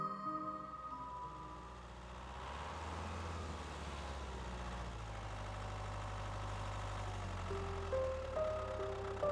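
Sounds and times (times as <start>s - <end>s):
rickety tractor engine idling in pumpkin fields: 0.9s - 9.3s.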